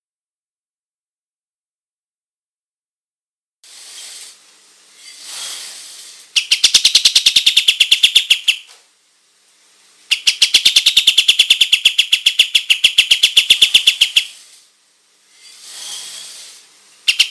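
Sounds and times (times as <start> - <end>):
soft hissing rustle: 3.6 - 10.2, 13.1 - 17.2
olive-winged bulbul song of very rapid high chirps: 6.4 - 8.7, 10.1 - 14.4, 17.1 - 17.2.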